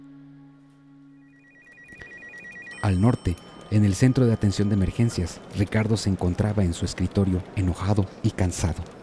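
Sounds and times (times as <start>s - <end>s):
telephone ringing with a warbling electronic trill: 1.2s - 6.3s
speech: 2.8s - 9.0s.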